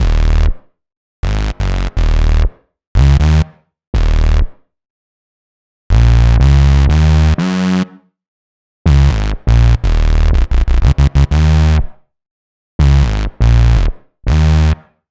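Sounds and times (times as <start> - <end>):
bass in D sharp minor: 0.0 - 4.6, 5.9 - 8.0, 8.9 - 12.0, 12.8 - 15.0.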